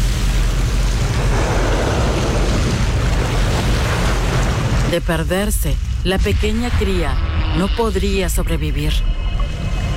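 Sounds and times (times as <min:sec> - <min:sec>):
underwater churning water with bubbling: 0:00.0 - 0:05.0
speech: 0:04.9 - 0:09.6.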